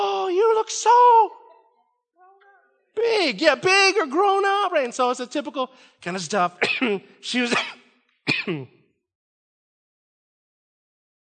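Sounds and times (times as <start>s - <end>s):
speech: 0.6s - 1.4s, 3.0s - 8.8s
person coughing: 6.6s - 8.9s.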